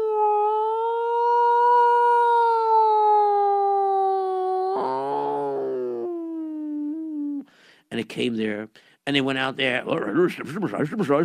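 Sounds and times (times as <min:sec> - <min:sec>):
voice imitating an old-fashioned ambulance siren: 0:00.0 - 0:07.4
speech: 0:08.1 - 0:11.2.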